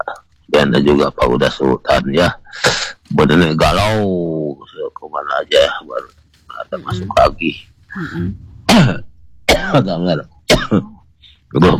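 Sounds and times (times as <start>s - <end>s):
speech: 0.6s - 9.1s, 9.7s - 11.7s
breathy sounds: 2.5s - 3.0s, 7.9s - 8.4s
person coughing: 8.0s - 9.8s, 10.5s - 11.0s.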